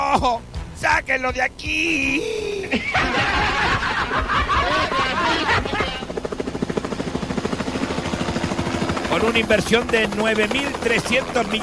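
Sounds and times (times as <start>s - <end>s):
speech: 0.2s - 5.7s, 9.1s - 11.6s
excited voices: 1.8s - 6.2s
people laughing: 2.2s - 6.1s
helicopter rotor blades thumping: 3.0s - 11.6s.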